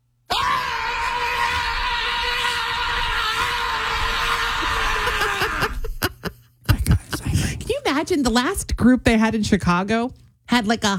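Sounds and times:
person screaming loudly: 0.3 - 6.0
laughter-like bursts: 4.6 - 7.2
speech: 8.0 - 10.9.

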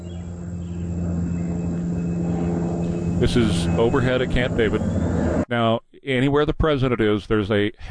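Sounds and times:
single-prop light plane droning overhead: 0.0 - 5.5
speech: 3.2 - 7.8.

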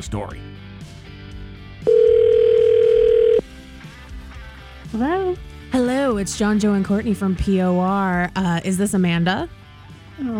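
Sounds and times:
speech: 0.0 - 0.7, 4.9 - 9.6, 10.2 - 10.3
electronic ring tone from an outgoing phone call: 1.8 - 3.4.

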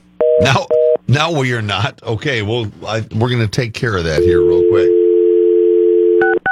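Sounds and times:
speech: 0.4 - 4.9
telephone dial tone: 4.2 - 6.4.

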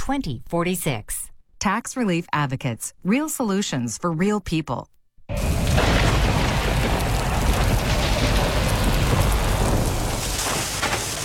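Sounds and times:
speech: 0.1 - 5.4
deep thunder rumbling and booming: 5.3 - 11.2
heavy rain pouring: 5.3 - 11.2.

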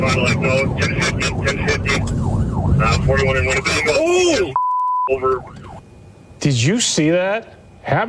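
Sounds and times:
voices: 0.0 - 2.1, 2.8 - 5.8
police siren yelping and wailing: 0.0 - 5.8
rumbling engine and road noise: 0.0 - 8.0
speech: 0.1 - 5.8, 6.4 - 8.0
steady electronic beep: 4.5 - 5.5.

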